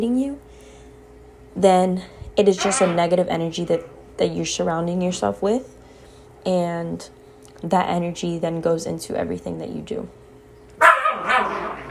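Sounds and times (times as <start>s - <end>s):
speech: 0.0s - 0.5s, 1.6s - 5.8s, 6.4s - 10.2s
frustrated dog biting a ball and barking: 10.8s - 11.9s.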